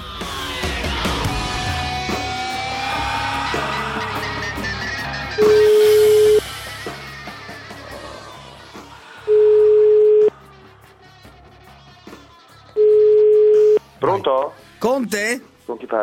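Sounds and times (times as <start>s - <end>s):
music: 0.0s - 16.0s
laughter: 2.3s - 9.9s
telephone ringing tone of an outgoing call: 5.4s - 6.4s, 9.3s - 10.3s, 12.8s - 13.8s
speech: 14.4s - 16.0s.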